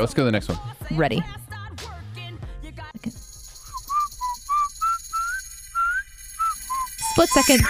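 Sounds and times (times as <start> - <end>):
speech: 0.0 - 1.4, 7.2 - 7.6
whistled melody in a played recording: 3.1 - 7.6.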